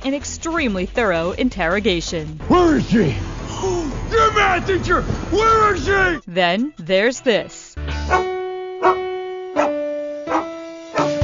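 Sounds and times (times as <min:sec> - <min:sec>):
speech: 0:00.1 - 0:03.8, 0:04.5 - 0:09.0
dogs barking and howling a melody: 0:08.1 - 0:11.2.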